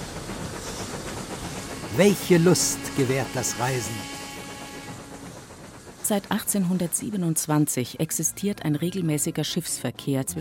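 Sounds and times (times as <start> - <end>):
steam train wheels clattering on rails: 0.0 - 8.2
steam train departing on the railway to Mechelen with hissing rumble: 0.0 - 10.3
speech: 1.9 - 4.2, 6.1 - 10.3.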